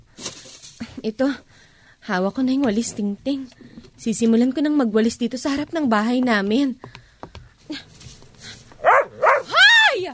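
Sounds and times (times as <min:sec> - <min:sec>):
speech: 0:01.0 - 0:01.5, 0:02.1 - 0:07.0
dog barking in front of a house: 0:08.8 - 0:09.6.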